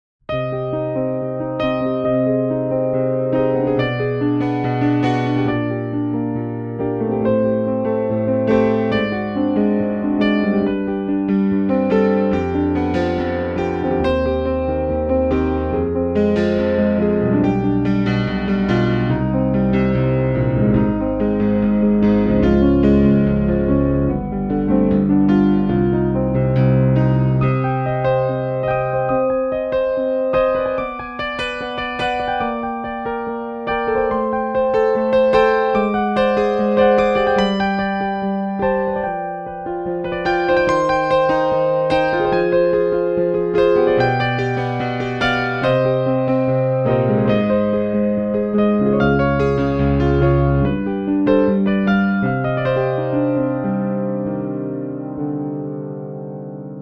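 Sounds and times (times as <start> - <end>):
electric piano: 0.3 - 56.8.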